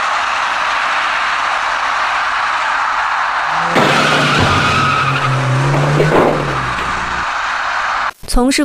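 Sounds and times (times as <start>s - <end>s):
steady traffic noise at an evening intersection: 0.0s - 8.1s
loud squealing skidding of a cement mixer truck striking a cyclist: 2.0s - 8.1s.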